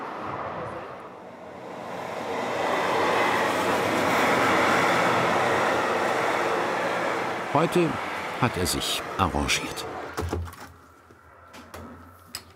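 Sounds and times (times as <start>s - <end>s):
freight train passing by: 0.0s - 10.2s
speech: 7.6s - 10.6s.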